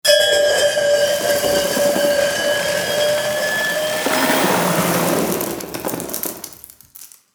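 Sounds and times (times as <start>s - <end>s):
long bell scrape with gravel: 0.1s - 7.2s.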